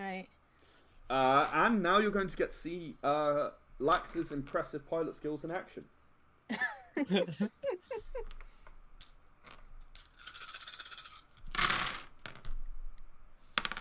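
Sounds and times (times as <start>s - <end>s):
speech: 1.1s - 7.6s
dice dropping off a table: 8.2s - 13.8s.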